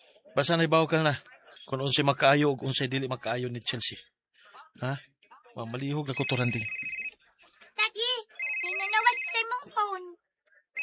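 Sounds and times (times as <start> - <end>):
speech: 0.4 - 4.1, 4.7 - 6.9
mobile phone ringtone with bright electronic melody: 6.1 - 7.2, 8.3 - 10.0.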